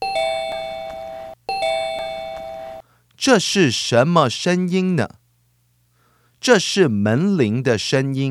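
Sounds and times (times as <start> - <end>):
doorbell chiming: 0.0 - 2.8
speech: 3.2 - 5.2, 6.4 - 8.2.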